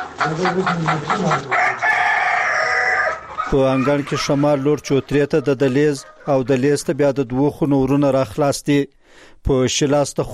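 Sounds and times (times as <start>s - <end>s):
hens clucking in a house yard strewn with leaves and litter: 0.0s - 8.0s
speech: 0.2s - 1.6s, 3.5s - 10.3s
rooster crowing in a house yard: 1.5s - 6.0s.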